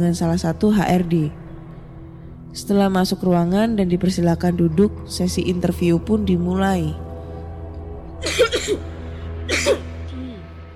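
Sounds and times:
speech: 0:00.0 - 0:01.4, 0:02.5 - 0:07.1, 0:08.2 - 0:09.0
person coughing: 0:08.2 - 0:08.9, 0:09.5 - 0:10.4.

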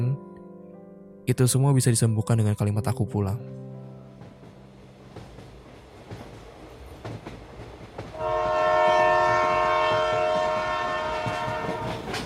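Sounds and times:
speech: 0:01.3 - 0:03.7
train rumbling along the rails: 0:03.9 - 0:12.2
loud sustained train horn blaring: 0:08.1 - 0:12.2.

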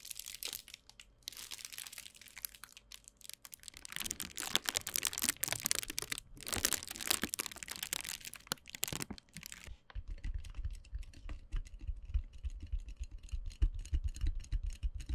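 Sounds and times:
bubble packaging crinkling and rustling: 0:00.0 - 0:09.7
tapping and popping: 0:03.3 - 0:15.1.

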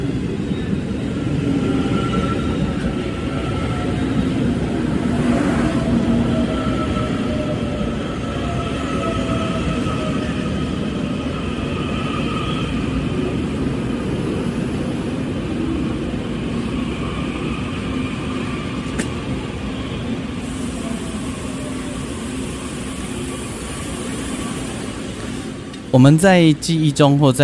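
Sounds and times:
Taiwan Railways New Tze-Chiang electric express train pulling into a station in Taiwan: 0:00.0 - 0:27.0
speech: 0:26.0 - 0:27.4.

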